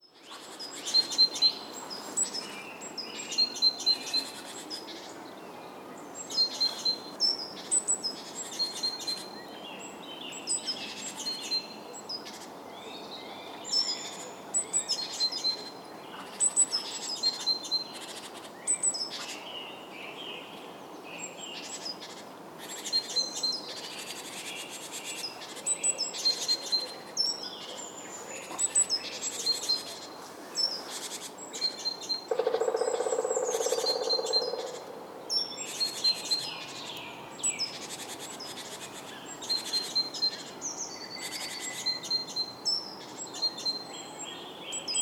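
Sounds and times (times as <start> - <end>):
birds: 0.0 - 44.9.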